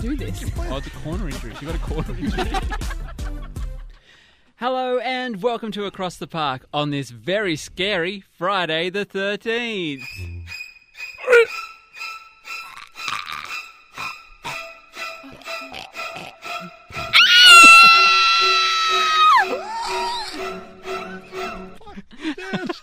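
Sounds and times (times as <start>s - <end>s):
speech: 0.0s - 3.6s, 4.6s - 10.4s, 11.3s - 11.6s
laughter: 0.6s - 4.0s, 21.0s - 22.8s
person screaming: 17.1s - 20.4s.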